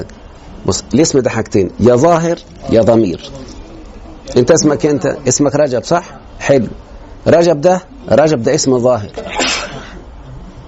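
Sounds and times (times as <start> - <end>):
speech: 0.0 - 3.5, 4.3 - 9.2
person sneezing: 9.2 - 10.0.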